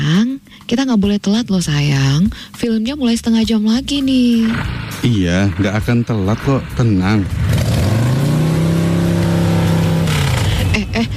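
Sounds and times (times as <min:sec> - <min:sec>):
speech: 0:00.7 - 0:07.5
motorcycle with a punctured tire droning while being ridden: 0:04.0 - 0:11.1.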